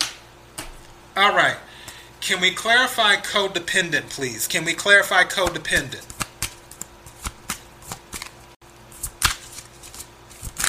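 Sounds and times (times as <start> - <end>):
speech: 1.2 - 6.1
tarot cards being shuffled by hand: 5.4 - 10.6.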